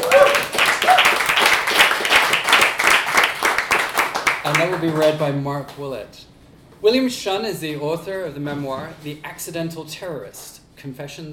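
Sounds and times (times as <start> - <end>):
person whooping: 0.0 - 1.4
audience applause: 0.0 - 5.1
speech: 4.5 - 11.3.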